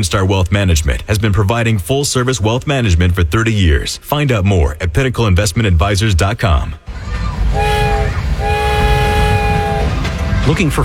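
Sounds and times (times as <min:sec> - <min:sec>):
speech: 0:00.0 - 0:07.8, 0:10.5 - 0:10.8
train rolling with a low rumble: 0:06.8 - 0:10.8
train horn blasts: 0:07.5 - 0:10.2.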